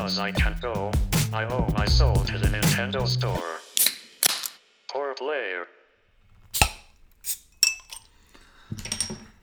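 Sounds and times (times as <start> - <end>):
speech: 0.1 - 3.7
handling noise: 6.2 - 9.4
glasses clinking in a toast: 6.3 - 9.4.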